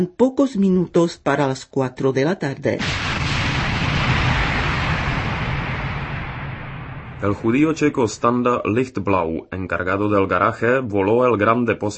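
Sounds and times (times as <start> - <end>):
speech: 0.0 - 3.2, 7.2 - 11.9
grenade explosion roar: 2.8 - 8.4.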